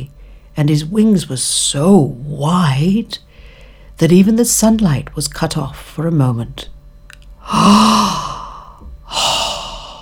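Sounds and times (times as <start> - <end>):
speech: 0.6 - 3.2, 4.0 - 6.7, 7.5 - 8.3
breathy voiced gasp of admiration: 7.4 - 10.0.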